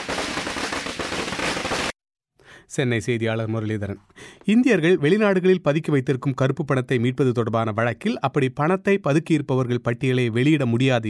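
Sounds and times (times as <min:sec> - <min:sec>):
firecrackers bursting in celebration of a political leader's homecoming: 0:00.0 - 0:02.0
speech: 0:02.7 - 0:11.0.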